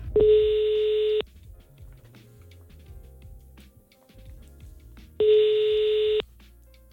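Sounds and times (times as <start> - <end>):
phone call ringback tone beeps: 0.2 - 1.2, 5.2 - 6.2.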